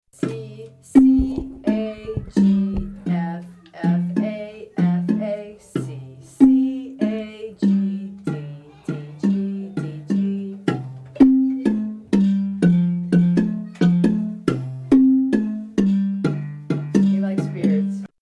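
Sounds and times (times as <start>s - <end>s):
baritone marimba: 1.0s - 18.1s.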